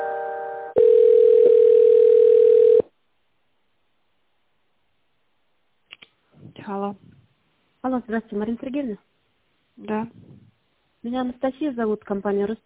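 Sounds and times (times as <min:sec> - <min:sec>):
telephone tones while a call is being connected: 0:00.7 - 0:02.9
speech: 0:07.9 - 0:09.1, 0:09.8 - 0:10.3, 0:11.0 - 0:12.6.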